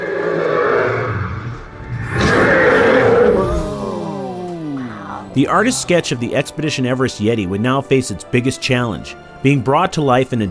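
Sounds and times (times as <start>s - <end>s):
creature whistling shriek: 0.2s - 6.2s
speech: 5.4s - 10.4s.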